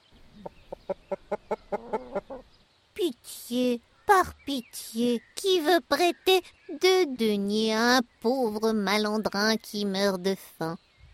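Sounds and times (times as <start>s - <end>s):
hen clucking: 0.3s - 2.6s
speech: 3.2s - 10.8s.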